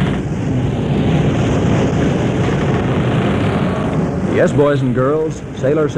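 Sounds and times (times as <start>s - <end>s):
strong wind roaring: 0.0s - 5.9s
speech: 4.4s - 5.9s.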